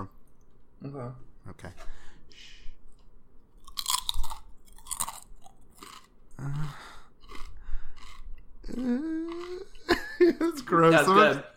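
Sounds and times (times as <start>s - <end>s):
speech: 0.8s - 2.5s, 6.4s - 6.9s, 8.7s - 11.5s
crunchy chewing of pie: 2.9s - 9.8s
laughter: 9.7s - 11.4s.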